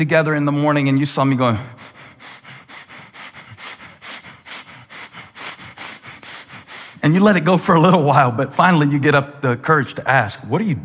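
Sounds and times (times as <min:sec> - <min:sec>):
speech: 0:00.0 - 0:02.1, 0:07.1 - 0:10.8
person taking rapid exaggerated sniffing inhalations: 0:01.4 - 0:07.6.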